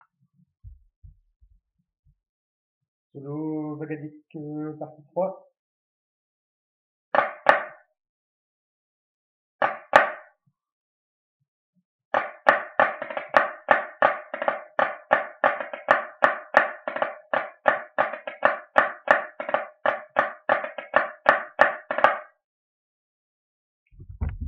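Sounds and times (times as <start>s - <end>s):
solo bagad drumming: 7.2s - 7.7s, 9.6s - 10.2s, 12.2s - 22.3s.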